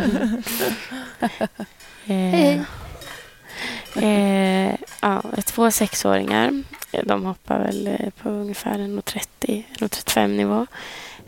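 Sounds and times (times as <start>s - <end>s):
speech: 0.0s - 2.8s, 3.9s - 11.2s
pots and pans clattering in a saucepan band: 3.0s - 8.0s.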